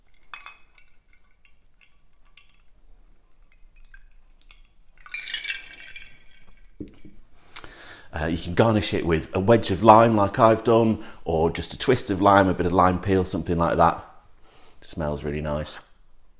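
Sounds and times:
ice rattling in a cocktail shaker: 0.0s - 2.8s, 3.4s - 6.8s
cocktail splashing from a shaker into a coupe glass: 0.0s - 6.9s
speech: 8.2s - 14.1s, 14.8s - 15.9s.

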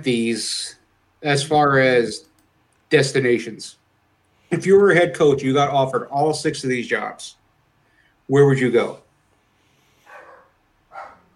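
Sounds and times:
speech: 0.0s - 2.3s, 2.9s - 3.8s, 4.5s - 7.4s, 8.3s - 9.0s
dog barking: 10.0s - 11.3s.

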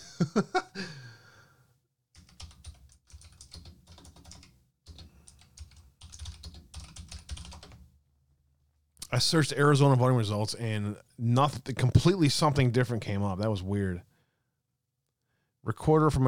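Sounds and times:
laughter: 0.0s - 1.0s
speech: 0.2s - 0.6s, 9.2s - 14.1s, 15.6s - 16.2s
rapid typing on a computer keyboard: 2.2s - 7.9s.

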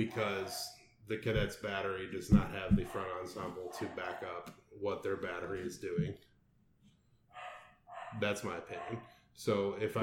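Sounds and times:
speech: 0.0s - 6.3s, 8.1s - 10.0s
dog barking: 2.8s - 4.2s, 7.3s - 9.1s.

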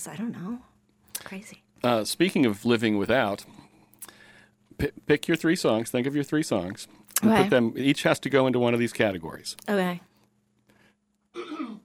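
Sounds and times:
speech: 0.0s - 3.6s, 4.8s - 10.1s
raspy throat clearing: 11.3s - 11.8s.

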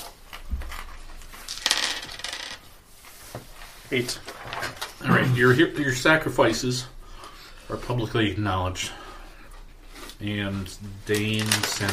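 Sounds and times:
feat die rolled and clattering across a hard surface: 1.5s - 2.6s
speech: 3.9s - 4.3s, 5.1s - 7.0s, 7.7s - 9.0s, 10.2s - 11.9s.

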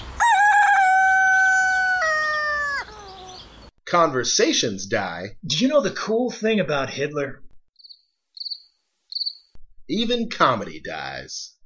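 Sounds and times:
rooster crowing: 0.2s - 3.4s
speech: 3.9s - 7.4s, 9.9s - 11.6s.

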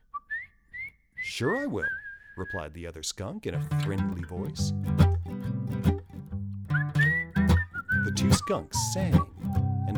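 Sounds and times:
bright whistled happy tune: 0.0s - 1.1s, 6.7s - 9.9s
speech: 1.4s - 6.0s, 8.2s - 9.9s.

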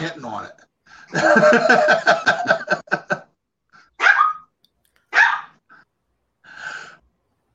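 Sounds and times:
speech: 0.0s - 2.6s
laughter: 1.1s - 3.4s
dog barking: 4.0s - 4.5s, 5.1s - 5.6s.

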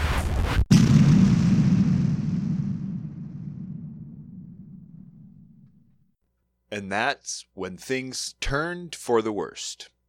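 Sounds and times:
explosion with a sharp crack and rumbling roar: 0.0s - 6.0s
speech: 6.7s - 10.0s.

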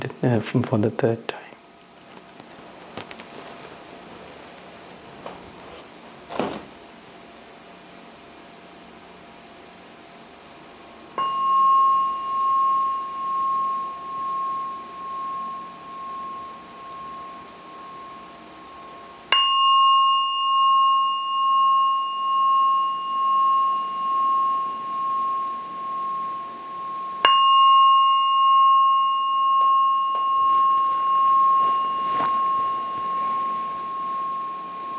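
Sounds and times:
speech: 0.2s - 1.4s
faint rustling: 2.0s - 6.8s, 30.2s - 34.2s
gong struck and ringing: 11.2s - 34.9s.

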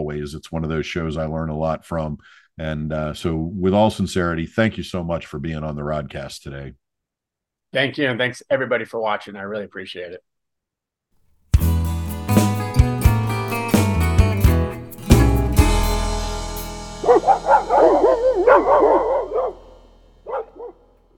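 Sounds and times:
speech: 0.1s - 6.8s, 7.7s - 10.3s
strummed musical chords: 11.6s - 21.1s
hound dogs baying and barking: 17.0s - 20.9s.

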